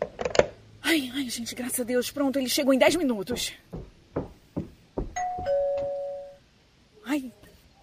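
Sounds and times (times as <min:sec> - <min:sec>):
speech: 0:00.9 - 0:03.9
firm knocks on a door: 0:02.9 - 0:05.9
two-tone doorbell chime: 0:05.2 - 0:06.4.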